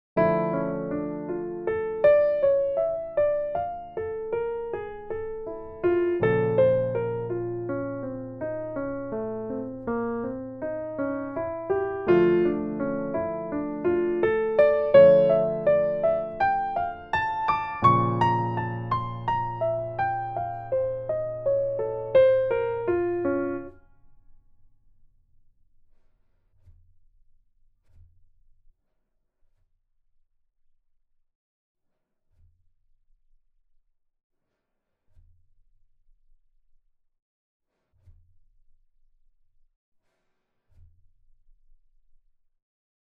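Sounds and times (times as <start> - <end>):
piano arpeggios with enclosures: 0.2 - 23.8.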